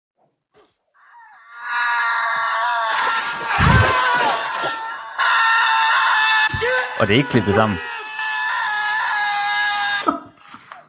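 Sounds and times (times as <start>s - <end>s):
man screaming in pain while being cut open in a film: 1.6s - 10.1s
speech: 7.0s - 7.9s.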